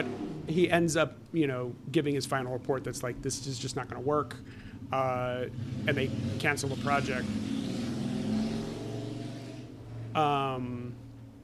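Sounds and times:
motorcycle roaring past with revving engine: 0:00.0 - 0:00.9, 0:03.6 - 0:11.4
speech: 0:00.0 - 0:07.6, 0:10.1 - 0:10.8.

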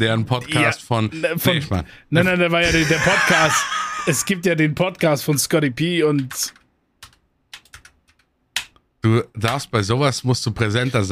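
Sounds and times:
speech: 0:00.0 - 0:06.6, 0:09.0 - 0:11.0
laughter: 0:02.6 - 0:04.5
keys struck on a mechanical keyboard: 0:06.2 - 0:08.8.

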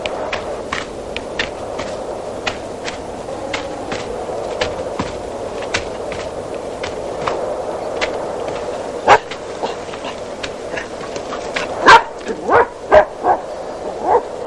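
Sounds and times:
steady low hiss: 0:00.0 - 0:14.4
dog barking outside a rural hut: 0:09.0 - 0:09.3, 0:11.7 - 0:14.3.

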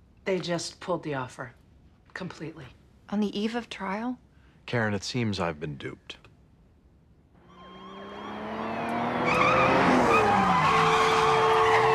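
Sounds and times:
speech: 0:00.3 - 0:01.6, 0:02.2 - 0:06.2
car engines roaring in a TV car chase: 0:07.4 - 0:11.9
tires screeching and skidding in a TV car chase: 0:07.4 - 0:11.9.

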